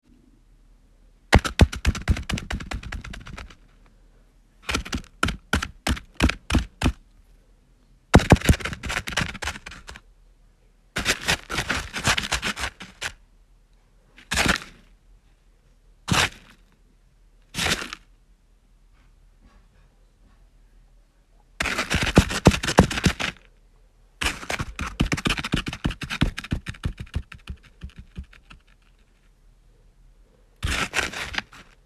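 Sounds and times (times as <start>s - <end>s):
small animal running away: 1.4s - 3.6s, 4.7s - 7.0s, 8.2s - 10.0s, 11.0s - 13.2s, 21.6s - 23.4s, 24.2s - 28.8s, 30.6s - 31.8s.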